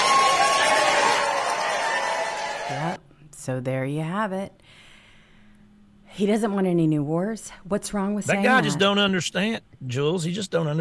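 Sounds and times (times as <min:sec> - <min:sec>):
large crowd booing: 0:00.0 - 0:03.0
speech: 0:02.7 - 0:04.9, 0:06.2 - 0:10.7.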